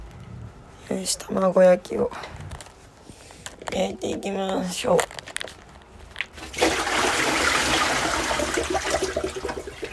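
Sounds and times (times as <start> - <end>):
speech: 1.0 - 2.4, 3.7 - 5.1
water from a sous-vide cooker poured down a drain: 6.3 - 9.8.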